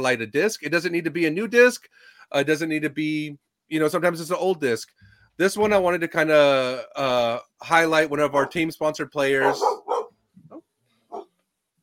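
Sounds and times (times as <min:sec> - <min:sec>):
speech: 0:00.0 - 0:09.8
dog barking: 0:09.4 - 0:10.2.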